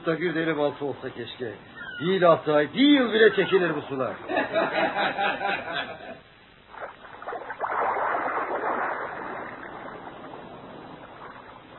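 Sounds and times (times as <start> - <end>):
speech: 0.0 - 6.0
laughter: 4.2 - 6.2
old boat gliding through water with wash and splash: 6.7 - 11.7.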